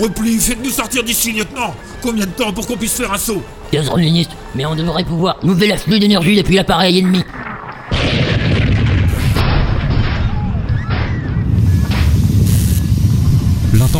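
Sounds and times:
speech: 0:00.0 - 0:07.4
sustained rumbling roar with crackling bursts and hissing of a shaking spaceship: 0:07.2 - 0:13.9
heavy explosion of a spaceship: 0:07.3 - 0:13.8.

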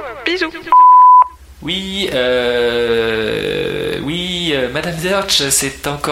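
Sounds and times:
speech: 0:00.3 - 0:01.0, 0:01.6 - 0:03.6, 0:04.5 - 0:06.1
short clear electronic answering machine beep: 0:00.7 - 0:01.4.

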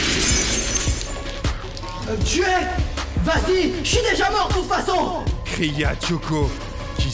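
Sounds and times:
energy rays shattering a thin defensive barrier: 0:00.2 - 0:02.2
speech: 0:02.2 - 0:07.1.

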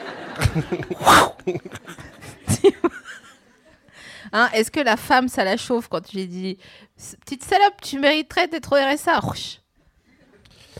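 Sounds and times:
laughter: 0:00.0 - 0:03.9
speech: 0:00.4 - 0:02.1, 0:04.3 - 0:09.6
loud explosive sneeze: 0:00.9 - 0:01.6
quiet snuffles, breaths and short vocal noises: 0:10.4 - 0:10.7.

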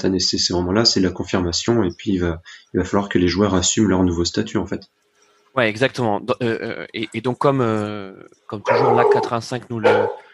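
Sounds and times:
speech: 0:00.0 - 0:05.0, 0:05.6 - 0:10.2
German shepherd dog barking: 0:08.6 - 0:10.3.

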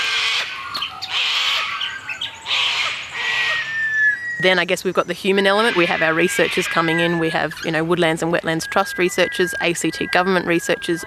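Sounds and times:
white-winged choughs squawking: 0:00.0 - 0:11.0
speech: 0:04.4 - 0:11.0.

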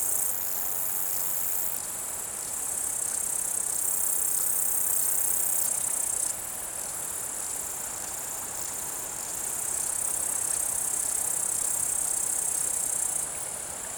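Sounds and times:
bush-cricket stridulation on an alpine pasture: 0:00.0 - 0:13.2.

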